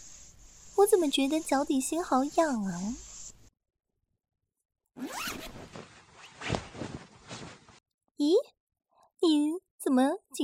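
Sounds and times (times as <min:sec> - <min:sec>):
speech: 0:00.8 - 0:03.1, 0:08.2 - 0:08.5, 0:09.3 - 0:10.4
trouser zipper being unzipped: 0:05.0 - 0:07.7.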